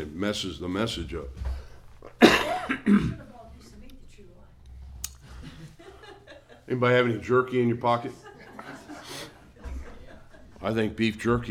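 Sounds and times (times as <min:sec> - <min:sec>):
speech: 0:00.0 - 0:01.5, 0:02.5 - 0:03.3, 0:06.7 - 0:08.2, 0:10.6 - 0:11.5
raspy coughs from an itchy irritated throat: 0:02.2 - 0:03.2
laughter: 0:05.2 - 0:07.2, 0:08.0 - 0:11.0.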